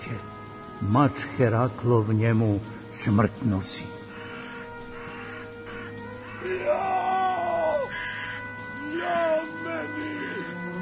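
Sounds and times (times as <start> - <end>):
speech: 0.1 - 4.0
man screaming in agony: 6.3 - 10.8.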